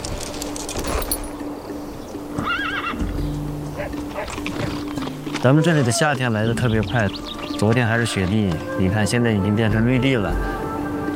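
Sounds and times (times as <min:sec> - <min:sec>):
horse hooves clip-clopping on open grassland: 0:00.0 - 0:08.8
saddled horse whinnying on open grassland at dawn: 0:02.4 - 0:03.1
speech: 0:05.4 - 0:10.6.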